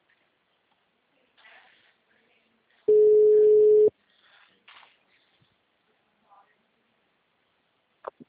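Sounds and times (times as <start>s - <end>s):
single steady electronic phone line tone while a call is placed: 2.9s - 3.9s.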